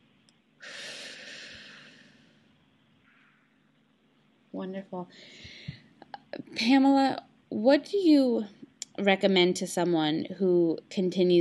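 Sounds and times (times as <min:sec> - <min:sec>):
single long deep breath during a guided relaxation moment: 0:00.6 - 0:02.5, 0:05.1 - 0:05.9
speech: 0:04.5 - 0:05.5, 0:06.4 - 0:11.3.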